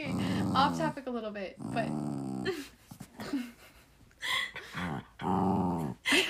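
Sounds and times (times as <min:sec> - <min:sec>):
speech: 0:00.0 - 0:02.7
dog growling and grumbling: 0:00.0 - 0:03.3, 0:04.6 - 0:06.1.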